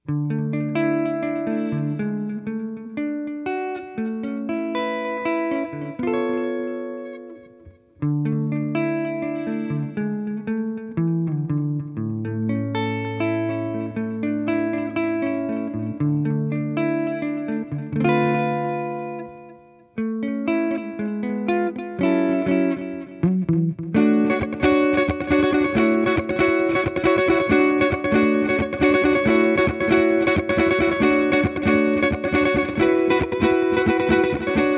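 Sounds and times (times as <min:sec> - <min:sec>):
guitar with delay effect: 0:00.0 - 0:34.7.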